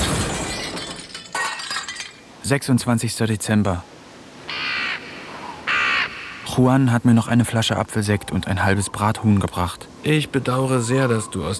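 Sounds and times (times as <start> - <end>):
television set glass shattering after being thrown out of a window: 0.0 - 2.4
television debris tinkling and clattering: 0.0 - 2.6
speech: 2.4 - 4.0, 6.6 - 11.5.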